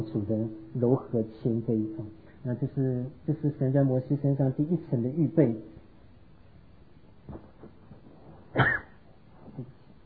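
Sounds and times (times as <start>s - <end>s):
speech: 0.0s - 5.7s, 8.5s - 8.8s, 9.6s - 9.8s
person coughing harshly: 8.5s - 9.0s.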